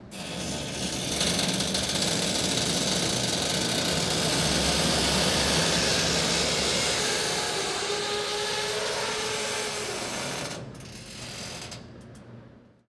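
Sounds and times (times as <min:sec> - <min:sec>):
creepy door creaking slowly: 0:00.2 - 0:12.0.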